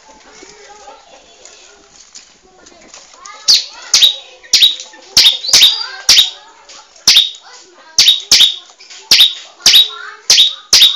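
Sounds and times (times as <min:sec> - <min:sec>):
bar-winged prinia song of sharp high chipping notes: 0:03.3 - 0:10.9.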